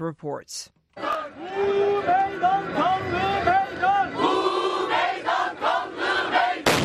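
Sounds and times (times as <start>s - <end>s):
large outdoor crowd at a peace rally in Turkey chanting and singing: 1.0s - 6.7s
loud bomb blast set off by suspected suicide bombers: 6.6s - 6.8s.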